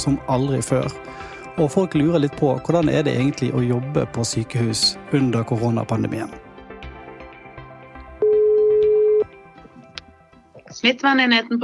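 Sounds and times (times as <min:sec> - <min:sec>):
speech: 0:00.0 - 0:06.5, 0:10.8 - 0:11.6
quiet music: 0:00.0 - 0:11.6
telephone ringback tone while placing a call to a hospital infection control unit: 0:08.2 - 0:09.3.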